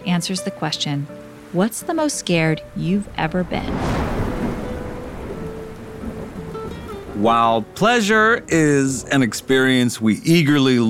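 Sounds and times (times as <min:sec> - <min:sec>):
steady rain pouring: 0:00.0 - 0:10.8
speech: 0:00.1 - 0:04.0, 0:07.2 - 0:10.8
low continuous rumble of thunder: 0:02.2 - 0:08.3.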